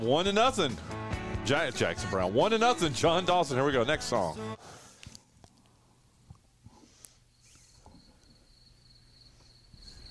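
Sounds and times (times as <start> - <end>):
speech: 0.0 - 4.7
crickets chirping with a thin high trill: 7.2 - 10.0.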